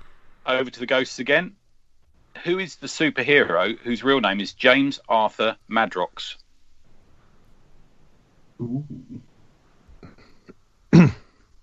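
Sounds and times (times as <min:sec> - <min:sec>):
speech: 0:00.5 - 0:01.6, 0:02.4 - 0:06.4, 0:08.6 - 0:09.3
low rumbling throat clearing: 0:10.0 - 0:11.4
single sharp loud cough: 0:10.9 - 0:11.3.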